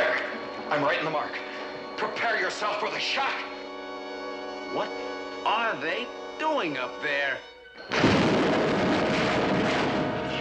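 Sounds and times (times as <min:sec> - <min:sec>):
speech: 0:00.7 - 0:03.5, 0:04.7 - 0:08.6
loud explosion with sustained crackling rumble: 0:07.9 - 0:10.3.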